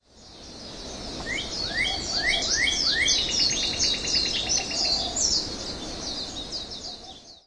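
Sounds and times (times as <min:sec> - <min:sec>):
birds in hana: 0:00.0 - 0:07.4.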